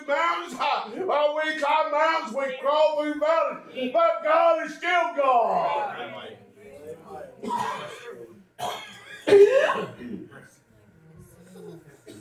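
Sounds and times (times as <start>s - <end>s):
speech: 0.1s - 6.1s
faint murmuring voices in a room: 5.6s - 12.2s
person coughing in sharp raspy bursts: 7.4s - 10.3s.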